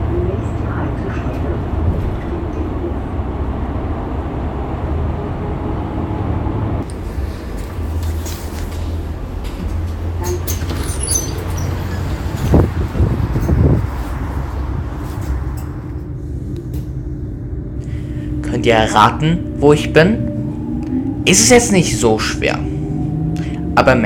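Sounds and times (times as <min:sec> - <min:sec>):
low engine drone inside a moving bus in Hamburg: 0:00.0 - 0:24.0
road rumble inside a moving bus in Hamburg: 0:00.0 - 0:24.0
sharp rattles and clunks: 0:07.7 - 0:15.8
speech: 0:18.7 - 0:20.3, 0:21.3 - 0:22.7, 0:23.8 - 0:24.0.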